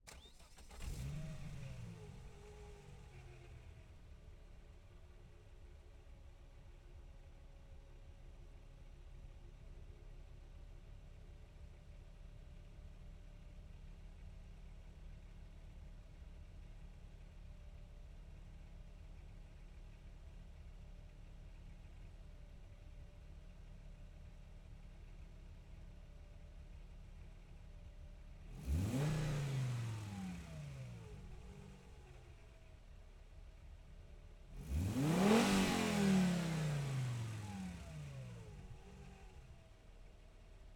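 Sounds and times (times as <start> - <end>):
Volvo 850 SE 2.5 1996 car engine starting, idling, blipping and shutting off: 0.0 - 6.4, 26.7 - 40.7.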